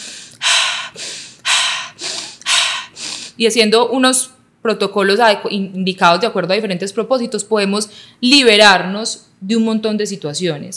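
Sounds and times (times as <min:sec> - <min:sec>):
forceful rhythmic alchemical breathing: 0:00.0 - 0:03.4
speech: 0:03.4 - 0:10.7.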